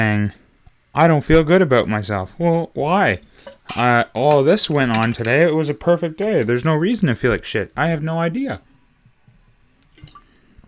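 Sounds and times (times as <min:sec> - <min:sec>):
speech: 0:00.0 - 0:00.4, 0:01.0 - 0:08.7
person gulping and swallowing water: 0:09.9 - 0:10.6.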